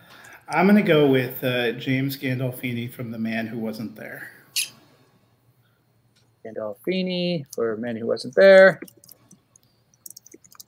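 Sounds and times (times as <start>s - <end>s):
speech: 0.5s - 4.4s, 6.4s - 9.1s
typing on a keyboard: 8.8s - 10.6s.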